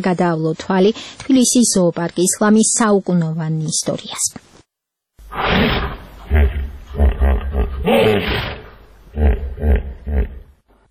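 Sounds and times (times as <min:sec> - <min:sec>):
speech: 0:00.0 - 0:04.5
16-year-old hippopotamus at a zoo grunting and bellowing: 0:05.2 - 0:10.6.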